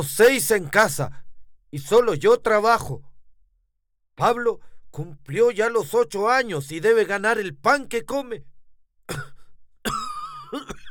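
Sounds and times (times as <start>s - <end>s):
speech: 0.0s - 3.1s, 4.2s - 8.5s, 9.1s - 10.8s
person coughing: 9.1s - 10.8s
throat clearing: 9.1s - 10.8s.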